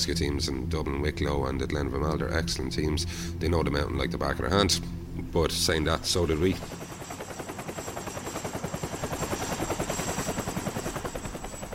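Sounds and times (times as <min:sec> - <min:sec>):
speech: 0:00.0 - 0:06.8
Coast Guard helicopter rotor blades chopping over a mountain: 0:05.5 - 0:11.7.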